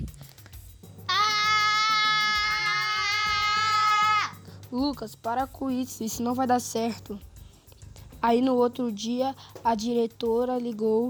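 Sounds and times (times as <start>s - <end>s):
child screaming loudly for help: 1.1s - 4.4s
speech: 4.7s - 7.3s, 8.2s - 11.0s.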